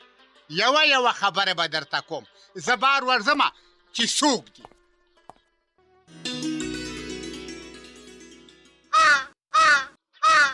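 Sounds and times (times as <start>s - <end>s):
speech: 0.5s - 4.8s
crow cawing: 8.9s - 10.5s.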